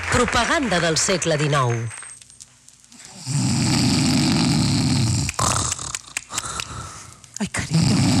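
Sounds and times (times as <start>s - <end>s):
speech: 0.2s - 2.0s
man snoring: 3.1s - 5.9s, 7.7s - 8.1s
short choppy snorts: 3.1s - 6.9s, 7.6s - 8.1s.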